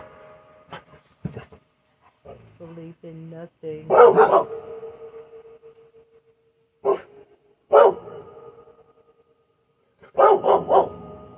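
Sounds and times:
speech: 2.6 - 4.8
quick loud dog barks: 3.9 - 5.0, 6.8 - 7.1, 7.7 - 8.5, 10.0 - 11.1.

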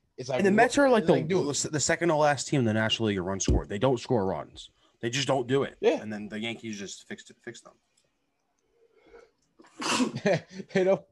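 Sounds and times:
speech: 0.2 - 7.9, 9.8 - 11.0
person sneezing: 9.7 - 10.2.

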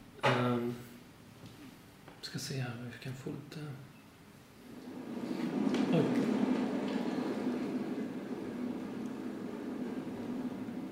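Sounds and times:
speech: 2.3 - 4.0
heavy rain pouring down: 4.7 - 10.9.

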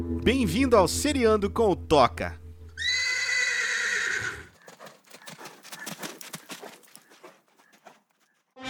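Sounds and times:
speech: 0.2 - 2.4
horse neighing: 2.8 - 7.0
horse hooves clip-clopping: 4.0 - 8.5.

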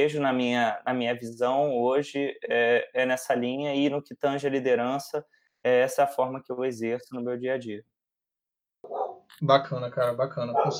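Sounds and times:
speech: 0.0 - 7.9, 8.8 - 10.7
dog barking: 8.8 - 9.3, 10.5 - 10.7.

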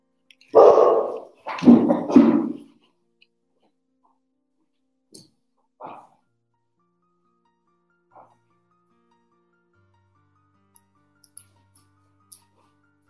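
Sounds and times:
dog barking angrily: 0.5 - 2.6.

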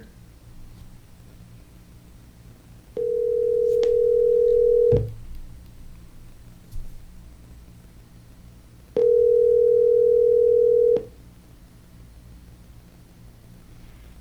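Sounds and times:
telephone ringback tone while placing a call: 3.0 - 5.2, 9.0 - 11.2.

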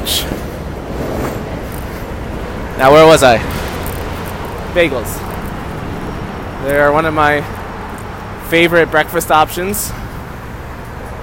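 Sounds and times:
train wheels and carriages rumbling past: 0.0 - 7.8
speech: 2.8 - 3.6, 4.7 - 5.3, 6.6 - 7.6, 8.5 - 10.0.

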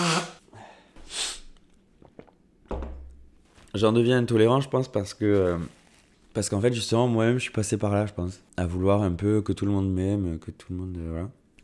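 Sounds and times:
person blowing their nose: 0.0 - 0.4, 1.0 - 1.5
speech: 3.8 - 5.8, 6.4 - 11.6.

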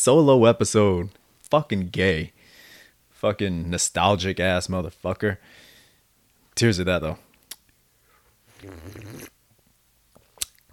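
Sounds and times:
speech: 0.0 - 2.4, 3.2 - 5.6, 6.6 - 7.3, 8.6 - 9.3
loud wet slurping sip from a glass: 8.6 - 9.3
small mouth clicks: 8.6 - 9.4.

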